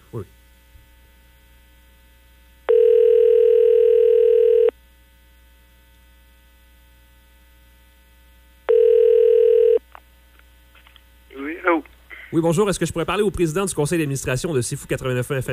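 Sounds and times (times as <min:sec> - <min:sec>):
low constant hum: 0:00.0 - 0:15.5
speech: 0:00.1 - 0:00.4, 0:12.4 - 0:15.5
ringback tone of a telephone call ringing through: 0:02.7 - 0:04.7, 0:08.7 - 0:09.8.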